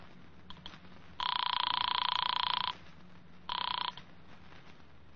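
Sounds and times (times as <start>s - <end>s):
telephone bell ringing: 1.2s - 2.8s, 3.5s - 4.0s.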